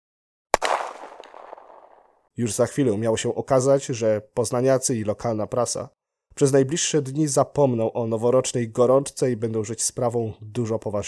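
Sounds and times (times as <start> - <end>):
sharp gunshot with rumbling echo on Ostrów Tumski in Poznań Poland: 0.6 - 2.1
speech: 2.4 - 11.0.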